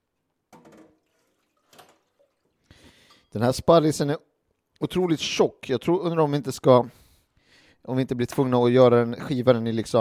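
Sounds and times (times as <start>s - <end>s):
faint water trickling: 0.9s - 3.6s
speech: 3.3s - 7.0s, 7.8s - 9.9s.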